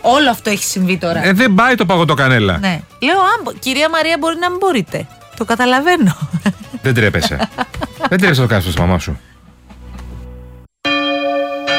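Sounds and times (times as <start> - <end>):
speech: 0.0 - 9.3
laughter: 6.0 - 8.6
church bells ringing: 10.8 - 11.7.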